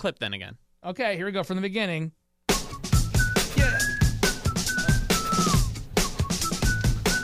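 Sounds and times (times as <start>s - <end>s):
speech: 0.0s - 2.2s
busy thumping rhythmic noise: 2.5s - 7.2s
thin wavering whistle: 2.7s - 7.2s.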